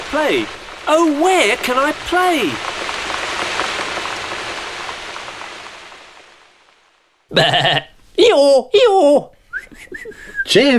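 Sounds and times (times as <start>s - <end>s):
steady rain pattering: 0.0s - 10.7s
speech: 0.1s - 2.7s, 7.3s - 10.7s
person mimicking a sheep or goat cry: 7.3s - 7.9s.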